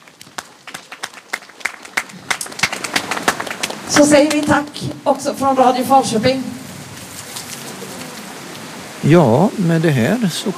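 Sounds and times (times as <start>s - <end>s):
modest audience applause: 0.0s - 4.7s
speech: 3.9s - 6.6s, 9.0s - 10.5s.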